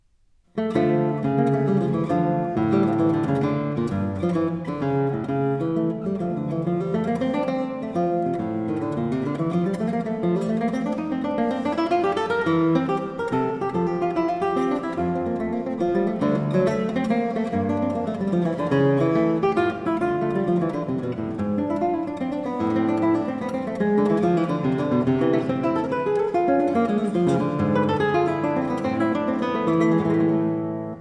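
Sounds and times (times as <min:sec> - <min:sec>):
guitar piece: 0:00.0 - 0:30.9.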